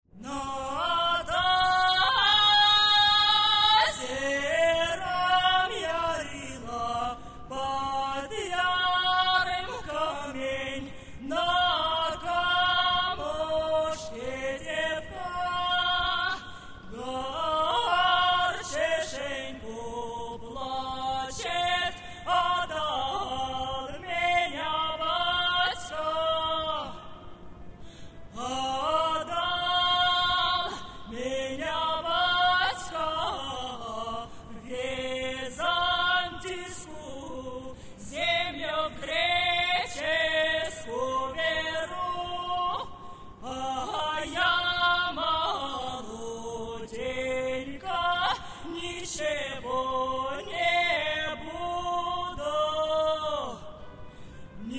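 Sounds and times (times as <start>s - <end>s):
Russian folk song: 0.1s - 54.7s.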